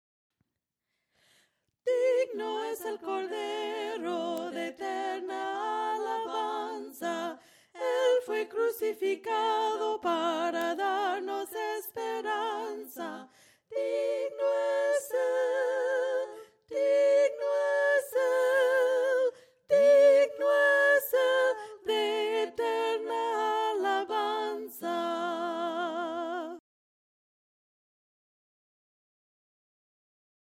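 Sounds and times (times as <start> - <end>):
voices singing hymns a cappella: 1.9 - 26.6.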